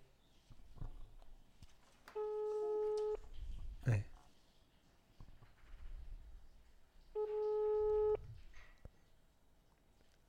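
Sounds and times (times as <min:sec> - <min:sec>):
phone line ringing unanswered: 0:02.2 - 0:03.2, 0:07.2 - 0:08.2.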